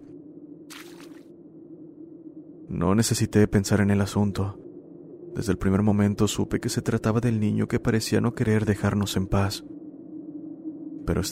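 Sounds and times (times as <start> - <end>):
child splashing in rain puddles in a courtyard: 0.7 - 1.2
speech: 2.7 - 4.6, 5.4 - 9.8, 11.1 - 11.3.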